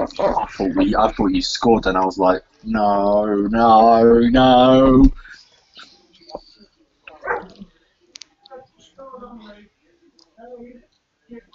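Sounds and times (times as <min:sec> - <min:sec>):
speech: 0:00.0 - 0:05.4
dog barking with short sharp yelps and a whimper: 0:07.2 - 0:07.6.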